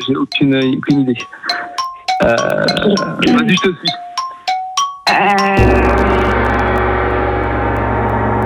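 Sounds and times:
speech: 0.0s - 1.5s, 2.2s - 4.0s, 5.1s - 5.8s
gong signalling end of quiz countdown: 5.6s - 8.4s.

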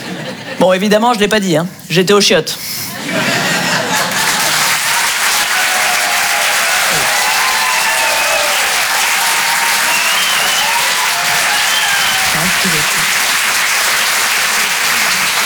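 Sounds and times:
laughter: 0.0s - 0.7s, 2.9s - 15.4s
speech: 0.6s - 3.4s
audience applause at a comedy club: 3.0s - 15.4s
faint voices and cheers: 4.8s - 13.5s.

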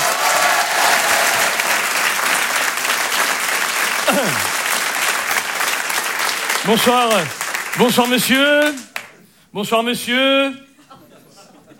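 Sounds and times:
live comedy club audience applauding: 0.0s - 9.1s
laughter: 4.0s - 4.6s, 10.8s - 11.7s
speech: 4.1s - 4.5s, 6.6s - 8.9s, 9.5s - 10.6s.

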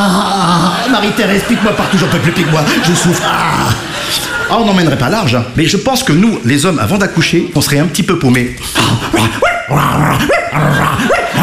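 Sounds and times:
laughter: 0.0s - 5.4s
speech: 0.9s - 11.4s
man imitating a dog with yaps, barks and whiny cries: 8.8s - 11.4s.

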